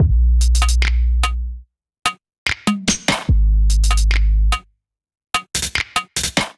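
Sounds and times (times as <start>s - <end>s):
drum groove: 0.0s - 1.4s, 2.5s - 4.2s, 5.4s - 6.5s.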